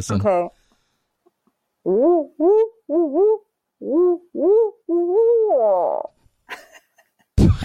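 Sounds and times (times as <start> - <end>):
speech: 0.0 - 0.6, 1.8 - 6.1
person imitating owl hoots of a bird call: 1.8 - 6.1
burst of laughter: 6.5 - 7.3.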